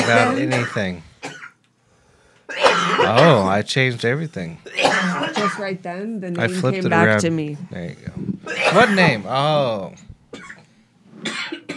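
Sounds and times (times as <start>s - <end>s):
person coughing after a hit from a vape pen: 0.0s - 1.5s, 2.5s - 3.5s, 4.7s - 5.7s, 8.5s - 9.2s, 11.2s - 11.7s
speech: 0.1s - 1.1s, 3.0s - 10.5s.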